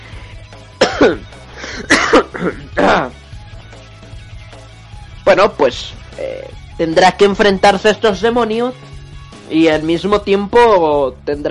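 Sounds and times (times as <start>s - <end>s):
throaty breaths: 0.0s - 0.7s, 1.4s - 1.9s
person in a loud coughing fit: 0.8s - 3.2s
speech: 1.0s - 3.2s, 5.3s - 8.9s, 9.5s - 11.5s.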